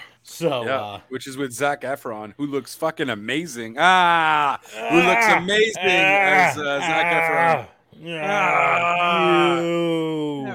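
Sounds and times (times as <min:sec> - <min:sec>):
speech: 0:00.4 - 0:10.5
person yawning loudly: 0:04.4 - 0:10.5.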